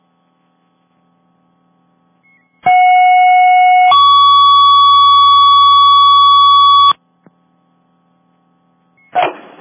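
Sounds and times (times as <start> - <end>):
fire dispatch second alarm electronic alert tones: 2.7 - 7.0.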